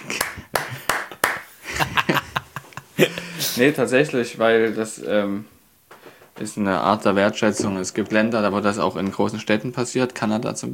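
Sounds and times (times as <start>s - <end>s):
person clapping hands: 0.0s - 1.9s
soft voice or laughter: 1.6s - 3.7s
speech: 3.0s - 5.6s, 6.4s - 10.7s.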